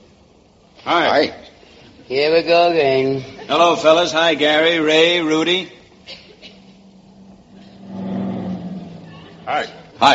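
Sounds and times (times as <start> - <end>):
speech: 0.8 - 1.4, 2.1 - 6.2, 9.5 - 10.1
truck driving past: 6.8 - 10.0.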